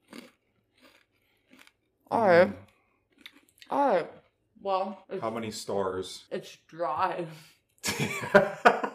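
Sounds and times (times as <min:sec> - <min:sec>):
chewing semi-soft cheese: 0:00.0 - 0:01.9, 0:02.5 - 0:04.3
speech: 0:02.1 - 0:02.6, 0:04.7 - 0:08.8.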